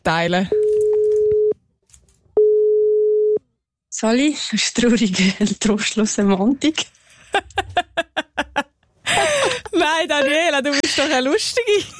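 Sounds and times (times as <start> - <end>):
speech: 0.0 - 0.6, 4.0 - 8.7, 9.8 - 11.9
single-pitched telephone call tone: 0.5 - 1.6, 2.4 - 3.4
laughter: 7.3 - 11.1.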